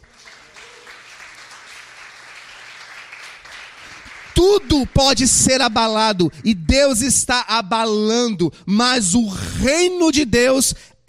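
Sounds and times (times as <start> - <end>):
audience applause: 0.0 - 7.2
speech: 4.5 - 11.0.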